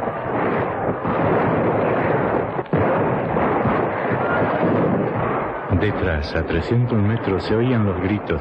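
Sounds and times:
rifle gunfire in a battle: 0:00.0 - 0:06.1
speech: 0:05.8 - 0:08.3.

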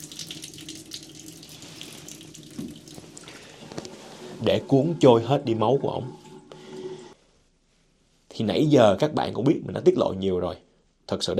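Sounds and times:
water running from a tap opened to a small flow: 0:00.0 - 0:03.6
speech: 0:04.4 - 0:06.2, 0:08.4 - 0:11.3.

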